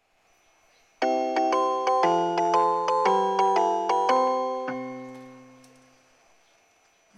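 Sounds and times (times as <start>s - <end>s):
up train departing: 1.0s - 5.9s.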